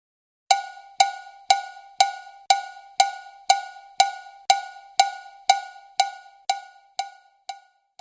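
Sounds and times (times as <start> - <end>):
small cowbell struck in a steady cha-cha-cha quarter-note beat: 0.5 - 7.9.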